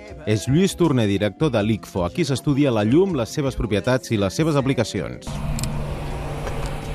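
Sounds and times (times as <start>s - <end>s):
speech: 0.1s - 5.6s
laser equipment running in a laboratory: 5.3s - 6.9s.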